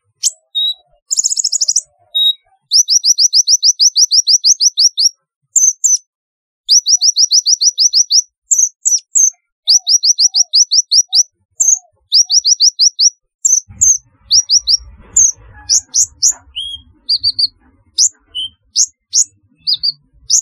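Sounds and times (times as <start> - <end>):
sunbird chirping: 0.0 - 6.1, 6.7 - 20.4
low rumble: 13.7 - 18.6.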